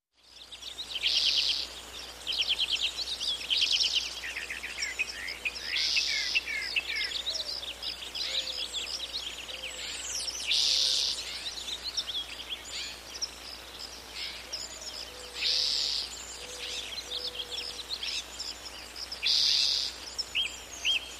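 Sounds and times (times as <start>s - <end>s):
birds chirping in a forest: 0.2s - 21.1s.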